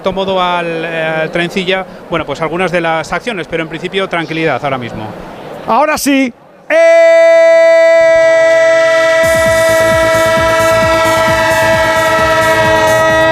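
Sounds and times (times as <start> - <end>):
speech: 0.0 - 7.4
train horn jingle chord: 8.6 - 13.3.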